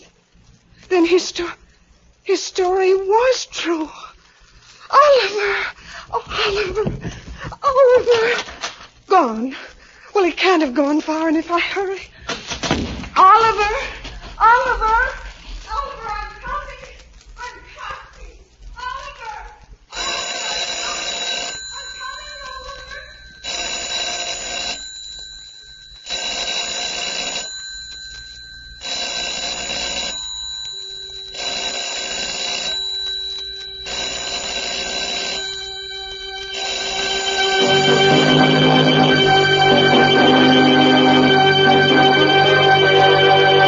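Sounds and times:
speech: 0:00.9 - 0:01.6, 0:02.3 - 0:04.1, 0:04.9 - 0:08.5, 0:09.1 - 0:12.1, 0:13.4 - 0:15.2
old telephone bell ringing loudly in an empty house: 0:19.9 - 0:43.6.

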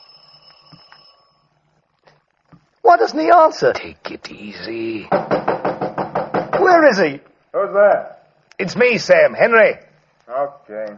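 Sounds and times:
doorbell ringing with a steady electric buzz: 0:00.0 - 0:01.5
speech: 0:02.8 - 0:05.6, 0:06.7 - 0:10.9.

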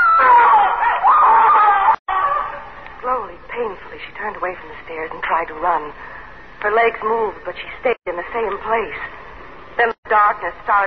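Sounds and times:
woman screaming: 0:00.0 - 0:02.8
speech: 0:04.0 - 0:09.2, 0:09.8 - 0:10.8.

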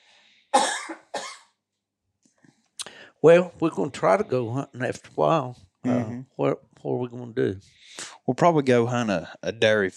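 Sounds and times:
faint breath: 0:00.0 - 0:00.6, 0:02.8 - 0:03.2, 0:07.7 - 0:08.2
person coughing from a tickle in the throat: 0:00.6 - 0:01.6
speech: 0:03.2 - 0:09.9.

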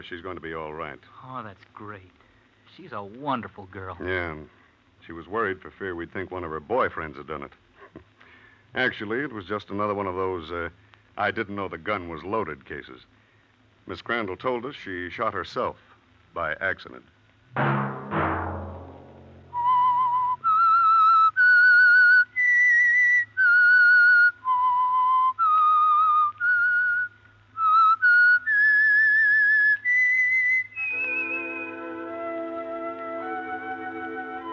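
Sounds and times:
speech: 0:00.0 - 0:08.1, 0:08.7 - 0:13.2, 0:13.8 - 0:17.9
held orchestral chord: 0:17.6 - 0:19.7
clear whistled eerie melody: 0:19.5 - 0:34.5.

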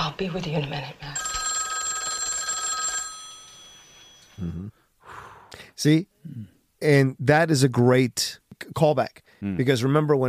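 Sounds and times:
speech: 0:00.1 - 0:01.2, 0:04.4 - 0:04.8, 0:05.8 - 0:10.2
old-fashioned telephone bell ringing: 0:01.2 - 0:04.4.

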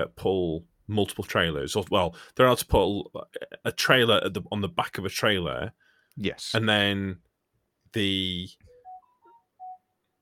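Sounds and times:
speech: 0:00.0 - 0:07.3, 0:07.9 - 0:08.6
phone alert tone playing a short electronic beeping melody: 0:08.7 - 0:09.9.

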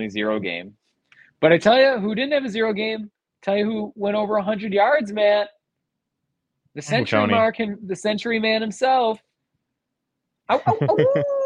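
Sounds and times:
speech: 0:00.0 - 0:00.8, 0:01.4 - 0:05.6, 0:06.8 - 0:09.3, 0:10.5 - 0:11.4
laughter: 0:06.9 - 0:07.4, 0:10.5 - 0:11.4
human voice imitating a wolf howl: 0:10.7 - 0:11.4.

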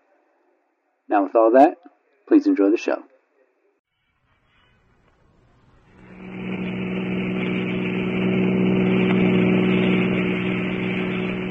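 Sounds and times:
speech: 0:01.1 - 0:03.1
car driving away from a hotel: 0:04.2 - 0:11.4.

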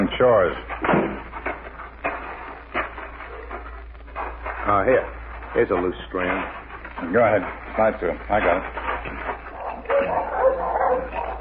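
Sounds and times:
speech: 0:00.2 - 0:01.0, 0:04.7 - 0:09.2
dogs at a farmhouse barking and yipping: 0:01.5 - 0:04.3, 0:08.6 - 0:11.3
dogs at a farmhouse whimpering: 0:09.4 - 0:11.3.

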